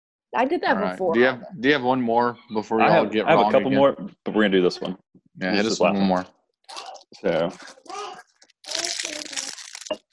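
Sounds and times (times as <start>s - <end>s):
speech: 0.3s - 8.0s
granola bar wrapper crinkling as it is opened: 6.7s - 10.1s.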